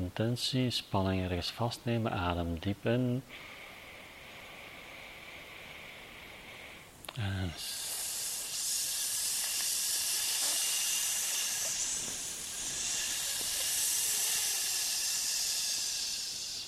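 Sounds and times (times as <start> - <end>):
speech: 0.1 - 3.6, 7.2 - 7.8
long steady hissing breath as a lung healing sound: 3.3 - 16.6.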